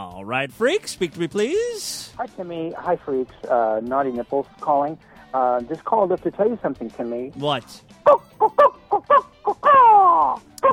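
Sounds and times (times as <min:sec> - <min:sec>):
speech: 0:00.1 - 0:09.3
person imitating chicken clucks on a voicemail message: 0:08.1 - 0:10.7.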